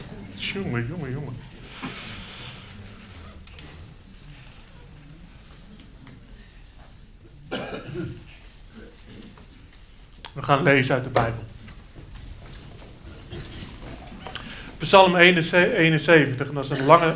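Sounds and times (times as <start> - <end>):
speech: 0.4 - 2.1, 10.5 - 11.5, 14.9 - 17.1
wet breathy sniffs through the nose: 1.6 - 3.4.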